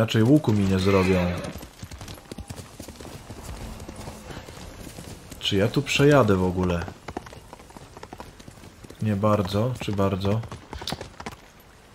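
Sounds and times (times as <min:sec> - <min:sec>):
speech: 0:00.0 - 0:01.7, 0:05.4 - 0:07.0, 0:09.0 - 0:10.6
video game horse hooves clip-clopping as the horse is ridden: 0:00.0 - 0:11.9.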